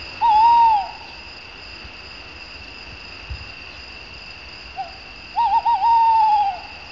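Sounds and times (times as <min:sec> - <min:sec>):
steady background hum: 0:00.0 - 0:06.9
tawny owl hooting: 0:00.2 - 0:01.2, 0:04.8 - 0:06.8.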